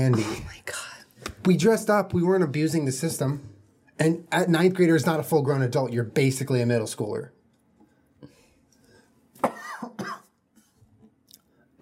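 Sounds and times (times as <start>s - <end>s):
speech: 0.0s - 0.6s, 1.5s - 7.4s
person coughing into a microphone: 9.4s - 10.4s.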